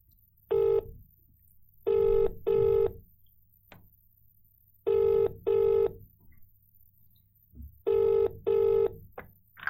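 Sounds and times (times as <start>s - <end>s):
low hum: 0.0s - 9.6s
buzzy phone ringback tone over a speaker: 1.9s - 3.0s, 4.9s - 6.0s, 7.9s - 9.0s.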